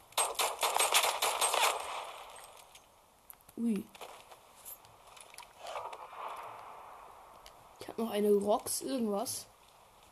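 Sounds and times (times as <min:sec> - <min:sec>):
video game pistol shots: 0:00.2 - 0:02.5
speech: 0:03.6 - 0:04.1, 0:07.8 - 0:09.5.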